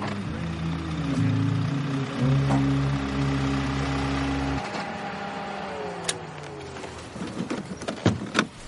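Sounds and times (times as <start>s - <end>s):
car engine humming while slowing and pulling onto the shoulder: 0.0s - 8.6s.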